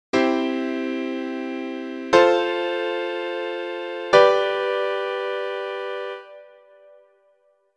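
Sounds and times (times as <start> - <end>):
chord progression: 0.1 - 7.1.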